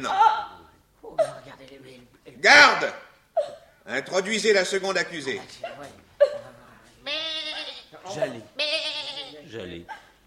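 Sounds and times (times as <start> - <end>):
speech: 2.4 - 3.0, 3.9 - 6.0, 8.1 - 8.7, 9.5 - 10.0
goat bleating: 7.0 - 9.5.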